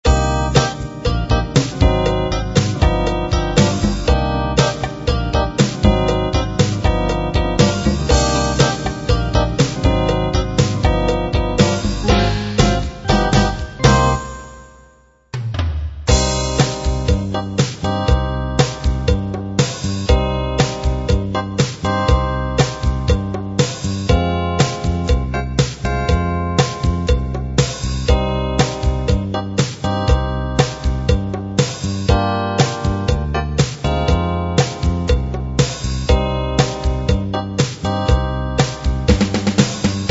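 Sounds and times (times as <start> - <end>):
Latin pop music: 0.0 - 40.0.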